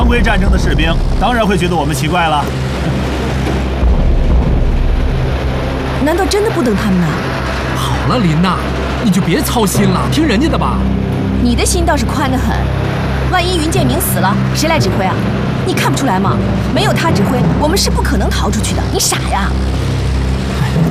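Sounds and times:
car driving with a steady low engine rumble: 0:00.0 - 0:20.9
speech: 0:00.1 - 0:03.7, 0:06.0 - 0:07.4, 0:08.0 - 0:20.0.

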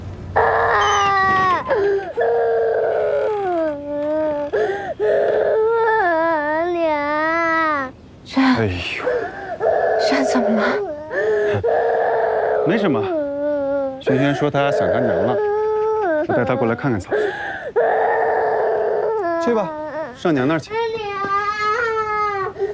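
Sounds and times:
child crying and wailing: 0:00.4 - 0:08.0, 0:09.0 - 0:22.7.

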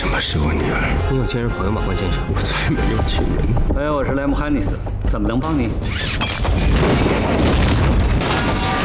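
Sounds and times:
speech: 0:00.2 - 0:07.8
bomb explosion with crackling debris: 0:06.6 - 0:08.8.

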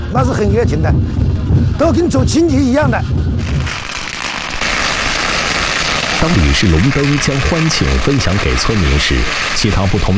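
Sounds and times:
speech: 0:00.1 - 0:03.6, 0:06.2 - 0:10.1
string of firecrackers crackling at a village New Year celebration: 0:03.4 - 0:10.1.

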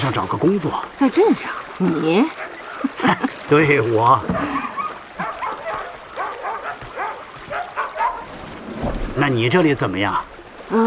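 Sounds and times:
speech: 0:00.1 - 0:04.5, 0:09.2 - 0:10.8
several dogs barking and yipping: 0:02.2 - 0:03.0, 0:04.2 - 0:08.6
dogs whimpering: 0:04.3 - 0:08.3.

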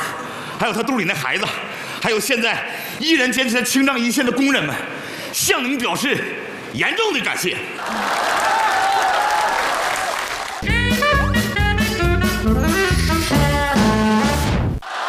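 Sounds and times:
speech: 0:00.6 - 0:08.4
large audience applause: 0:07.8 - 0:10.6
bright music: 0:10.6 - 0:14.5.

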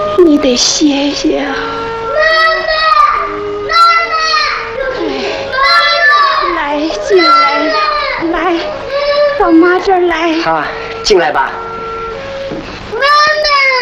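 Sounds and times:
speech: 0:00.2 - 0:02.5, 0:09.4 - 0:11.7
young child crying hard: 0:01.6 - 0:09.9, 0:12.9 - 0:13.8.

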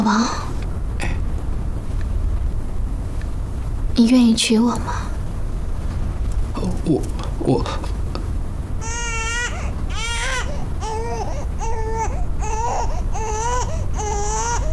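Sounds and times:
speech: 0:00.0 - 0:00.5, 0:04.0 - 0:05.1, 0:06.8 - 0:08.0
constant low hiss: 0:00.0 - 0:14.7
infant crying: 0:08.8 - 0:14.7.

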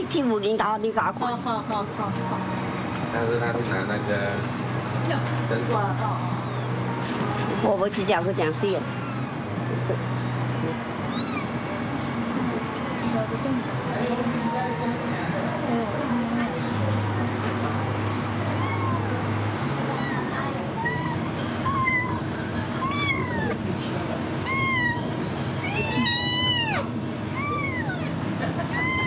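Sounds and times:
speech: 0:00.1 - 0:06.3, 0:07.6 - 0:09.0, 0:09.9 - 0:10.2, 0:13.2 - 0:16.2
murmuring voices: 0:03.4 - 0:29.0
hungry kitten meowing: 0:06.3 - 0:06.8, 0:08.4 - 0:09.5, 0:11.1 - 0:11.6, 0:18.5 - 0:19.2, 0:19.9 - 0:23.6, 0:24.4 - 0:29.0.

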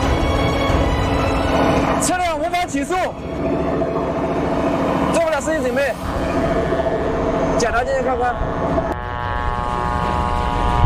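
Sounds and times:
target drone aircraft propeller engine taking off: 0:00.0 - 0:10.8
speech: 0:02.8 - 0:04.2, 0:07.6 - 0:08.9.

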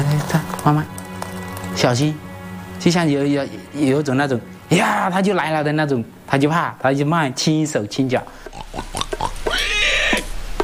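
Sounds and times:
speech: 0:00.6 - 0:01.0, 0:01.8 - 0:02.2, 0:02.8 - 0:08.7
two wild boars feeding, grunting and squealing: 0:08.4 - 0:10.3.

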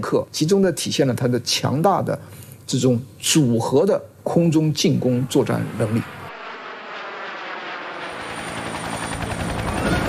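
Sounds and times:
speech: 0:00.0 - 0:06.2
military helicopters flying overhead with rotor thump and engine roar: 0:05.3 - 0:10.0.

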